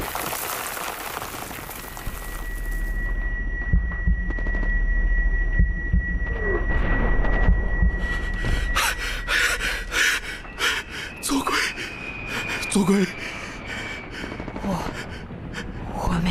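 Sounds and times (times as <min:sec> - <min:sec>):
low steady droning hum: 0:02.1 - 0:16.2
slow paired heartbeat thumps: 0:03.4 - 0:09.9.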